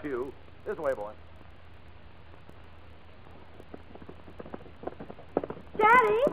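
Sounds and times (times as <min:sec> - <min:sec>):
speech: 0:00.0 - 0:01.3, 0:05.9 - 0:06.3
low rolling rumble: 0:00.0 - 0:06.3
horse hooves trotting around a track pulling a sulky: 0:01.3 - 0:06.3.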